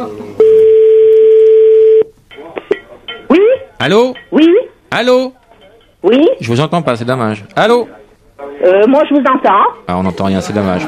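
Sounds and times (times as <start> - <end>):
telephone tone as a call is placed: 0.4 - 2.1
speech: 3.8 - 5.4, 6.0 - 8.0, 8.6 - 10.8.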